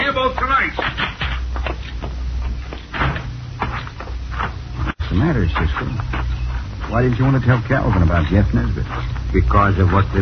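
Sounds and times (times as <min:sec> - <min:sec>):
steady low hum: 0:00.0 - 0:10.1
back door opening and closing: 0:02.9 - 0:03.3
speech: 0:05.3 - 0:06.2, 0:06.9 - 0:10.1.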